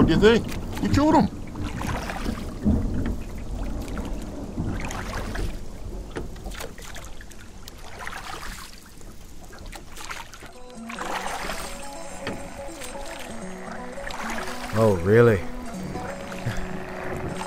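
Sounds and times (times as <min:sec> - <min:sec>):
low rolling thunder from an approaching storm: 0:00.0 - 0:06.5
boat noise: 0:00.0 - 0:17.4
steady wash of water: 0:00.0 - 0:17.4
speech: 0:00.1 - 0:01.7, 0:14.8 - 0:15.5.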